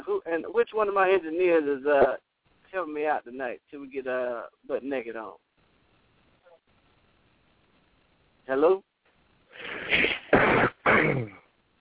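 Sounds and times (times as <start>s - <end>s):
speech: 0.3s - 5.4s, 8.5s - 8.9s, 10.6s - 11.4s
rough coughs or throat-clearing bursts: 9.6s - 11.5s.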